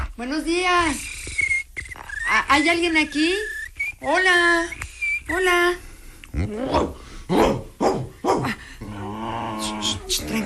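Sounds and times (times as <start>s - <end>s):
speech: 0.2s - 1.2s, 2.3s - 7.6s
dog low steady growl: 6.3s - 10.4s
dog barking loudly: 6.7s - 8.6s.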